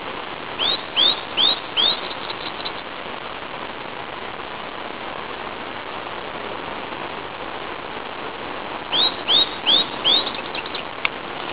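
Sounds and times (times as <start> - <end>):
unknown bird calling: 0.6 - 2.8, 8.9 - 10.9.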